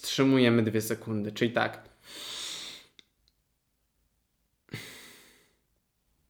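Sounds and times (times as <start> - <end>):
speech: 0.2 - 2.4
person doing a breathing exercise: 2.0 - 3.0, 4.7 - 5.6.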